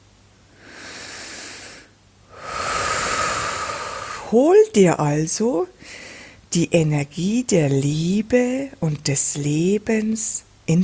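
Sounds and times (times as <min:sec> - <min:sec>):
slow deep breath in and out: 0:00.5 - 0:04.3, 0:05.8 - 0:06.4
speech: 0:04.3 - 0:10.8.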